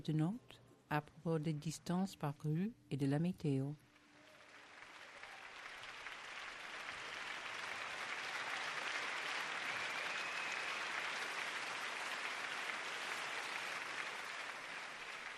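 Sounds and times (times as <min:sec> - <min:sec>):
speech: 0:00.0 - 0:03.8
audience applause: 0:04.1 - 0:15.3.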